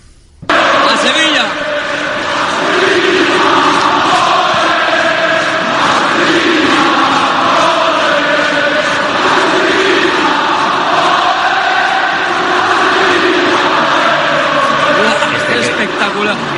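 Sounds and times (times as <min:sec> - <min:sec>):
football stadium crowd roaring at San Mamés: 0:00.5 - 0:16.5.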